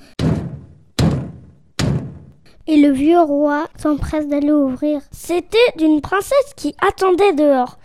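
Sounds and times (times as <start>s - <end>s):
slow heavy knocking on a door: 0.0s - 2.4s
speech: 2.7s - 7.8s.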